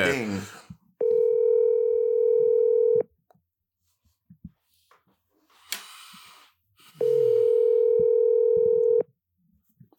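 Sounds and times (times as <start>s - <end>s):
telephone ringback tone: 1.0s - 3.0s, 7.0s - 9.0s.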